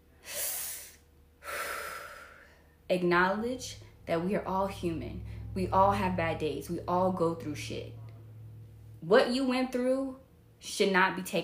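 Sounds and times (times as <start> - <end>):
deep breath: 0.2 - 2.8
speech: 2.9 - 8.0, 9.0 - 11.4.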